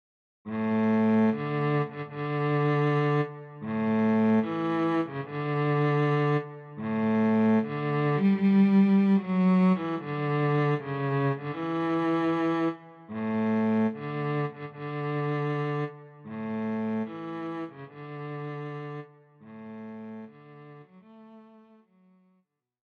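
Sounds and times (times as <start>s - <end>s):
solo cello: 0.5s - 22.3s.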